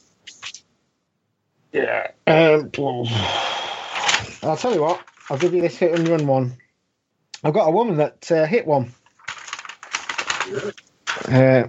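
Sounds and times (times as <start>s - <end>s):
crinkly rustling of paper: 0.0s - 0.6s, 3.8s - 6.5s, 8.9s - 11.5s
speech: 1.7s - 3.5s, 4.4s - 6.6s, 7.4s - 9.0s, 10.5s - 11.6s.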